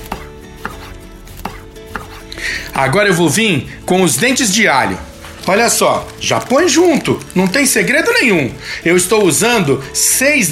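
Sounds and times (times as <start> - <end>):
knife coarsely chopping a peeled onion on a table: 0.0 - 2.4
speech: 2.8 - 10.4.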